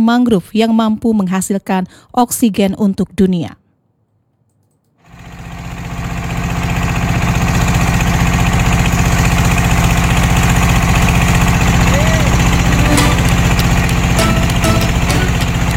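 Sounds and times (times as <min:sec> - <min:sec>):
speech: 0:00.0 - 0:03.6
small ketek motorboat engine droning on a river in South Sumatra: 0:05.1 - 0:15.7.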